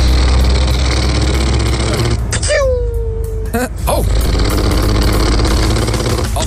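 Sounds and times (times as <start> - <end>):
loud rough truck engine rumbling: 0.0 - 6.4
person laughing: 3.4 - 3.8.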